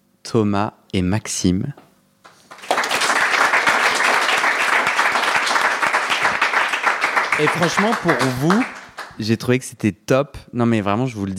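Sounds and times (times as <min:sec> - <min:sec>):
speech: 0:00.3 - 0:01.9, 0:07.4 - 0:11.3
crowd applause: 0:02.3 - 0:09.2.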